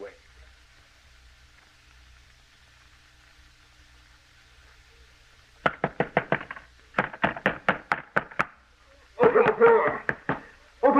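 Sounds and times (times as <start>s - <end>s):
man pounding on a door: 5.6s - 8.5s, 9.5s - 10.4s
person shouting: 9.2s - 10.2s.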